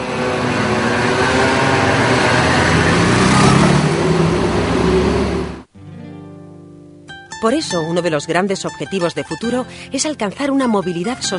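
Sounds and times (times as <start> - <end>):
engine rumble of road traffic: 0.0 - 5.7
speech: 7.4 - 11.3.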